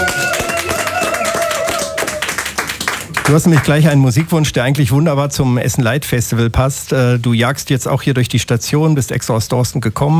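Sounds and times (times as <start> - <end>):
audience applause: 0.0 - 3.8
speech: 3.3 - 10.1.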